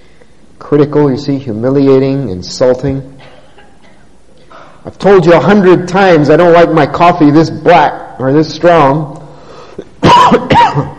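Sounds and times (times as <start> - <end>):
speech: 0.6 - 3.2, 4.9 - 9.2, 9.8 - 10.9
male preacher coughing harshly: 3.2 - 4.8, 9.8 - 10.9.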